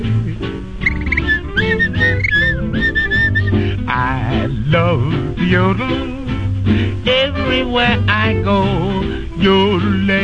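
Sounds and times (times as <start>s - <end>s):
full instrumental accompaniment: 0.0s - 9.9s
person whistling a bright lilting tune with warbling slides and trills: 0.8s - 3.8s
speech: 4.7s - 10.2s.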